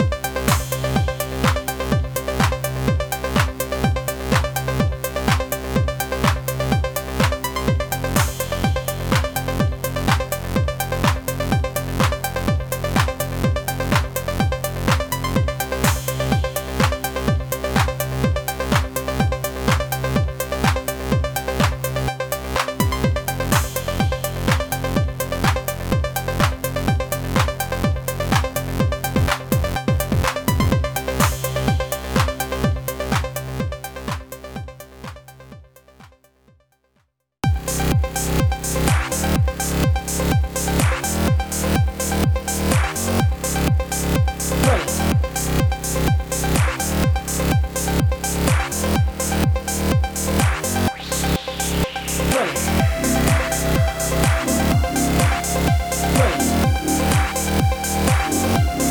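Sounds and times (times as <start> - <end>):
electro house pop music: 0.0 - 35.6, 37.4 - 58.8.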